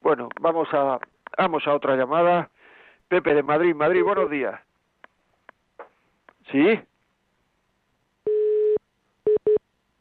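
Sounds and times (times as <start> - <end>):
speech: 0.1 - 4.7, 6.5 - 6.9
telephone line tone after caller hung up: 8.3 - 9.6.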